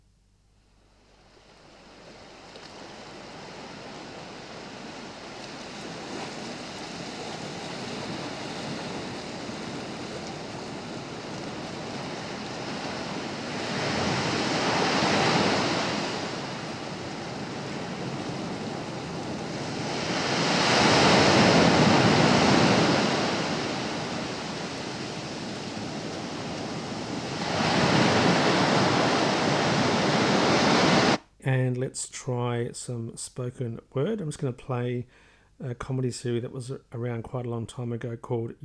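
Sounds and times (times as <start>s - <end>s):
ocean waves crashing on shore: 1.0s - 31.2s
steady roar of surf: 1.4s - 31.2s
speech: 31.8s - 38.6s.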